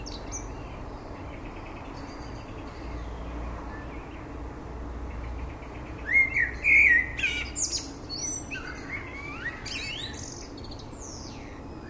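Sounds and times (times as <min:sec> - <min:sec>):
common blackbird Turdus merula singing: 0:00.0 - 0:04.3, 0:05.1 - 0:11.8.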